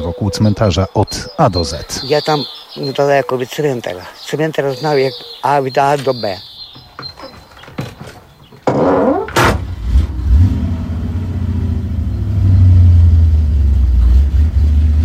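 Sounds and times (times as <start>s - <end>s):
speech: 0.0s - 6.5s
passenger car underside scraping dried clay and stones on rutted dirt track: 6.0s - 9.9s
low engine rumble: 8.0s - 15.0s.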